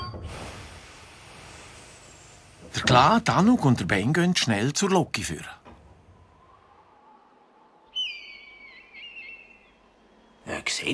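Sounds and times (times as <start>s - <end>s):
train brakes hissing with faint high squeal: 0.2s - 2.9s
speech: 2.8s - 5.6s.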